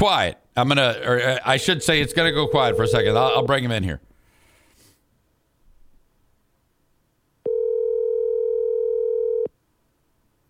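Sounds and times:
speech: 0:00.0 - 0:04.1
telephone dial tone while placing a call: 0:01.8 - 0:03.5, 0:07.5 - 0:09.5.

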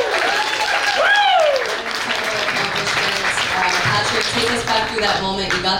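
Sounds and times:
cheering voices: 0:00.0 - 0:04.0
audience applause for a Hall of Fame induction: 0:00.0 - 0:05.7.

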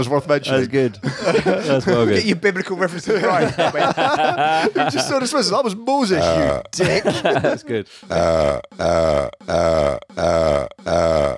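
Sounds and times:
speech: 0:00.0 - 0:11.3
laughter: 0:00.7 - 0:05.6, 0:06.2 - 0:09.0
deep drawn-out burps: 0:06.2 - 0:07.0, 0:08.0 - 0:11.3.

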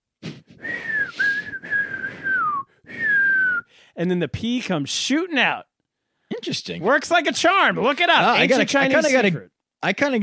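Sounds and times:
person whistling a steady sustained tone: 0:00.2 - 0:03.8
speech: 0:04.0 - 0:05.7, 0:06.4 - 0:10.2.

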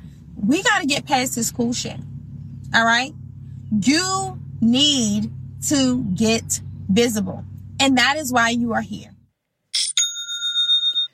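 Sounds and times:
speech: 0:00.5 - 0:02.1, 0:02.7 - 0:09.1
bright cash-register style new sale notification chime: 0:09.8 - 0:11.1.

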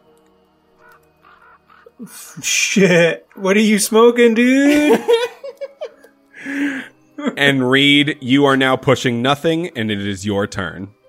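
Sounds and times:
raven cawing: 0:00.8 - 0:02.4
speech: 0:02.0 - 0:05.3, 0:07.4 - 0:11.0
laughter: 0:04.6 - 0:06.0.

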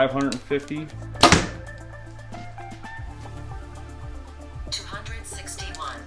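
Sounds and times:
speech: 0:00.0 - 0:01.2
compound bow shooting an arrow: 0:01.2 - 0:01.8.

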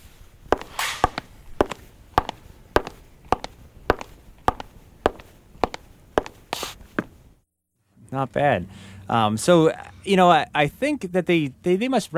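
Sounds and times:
hard-soled wingtip shoe footsteps on half-inch plywood board: 0:00.5 - 0:07.2
speech: 0:08.1 - 0:12.1.

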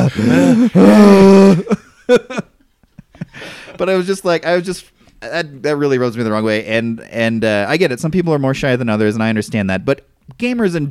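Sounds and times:
loud exaggerated breathing with groan-like exhales: 0:00.0 - 0:01.7, 0:03.3 - 0:03.8
speech: 0:00.0 - 0:02.5, 0:03.8 - 0:10.8.

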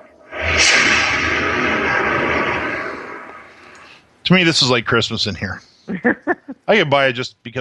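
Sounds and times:
military jet fighter roaring past: 0:00.0 - 0:03.9
speech: 0:04.3 - 0:07.5.

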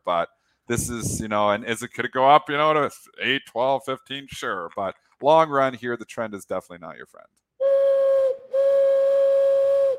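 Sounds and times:
speech: 0:00.0 - 0:07.4
train whistle: 0:07.6 - 0:09.9.

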